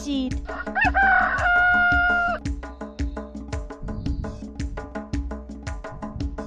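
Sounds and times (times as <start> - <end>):
speech: 0.0 - 1.0
bouncy percussive music beat: 0.0 - 6.4
rooster crowing: 0.5 - 2.4.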